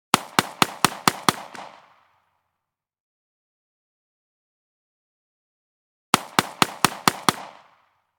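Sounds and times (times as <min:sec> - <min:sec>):
9mm pistol rapid fire: 0:00.1 - 0:02.3, 0:06.2 - 0:08.0.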